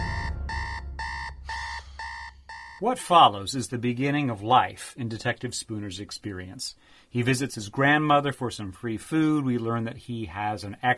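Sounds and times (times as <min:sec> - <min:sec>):
alarm clock beeping with bright electronic tones: 0:00.0 - 0:02.9
speech: 0:02.8 - 0:10.9.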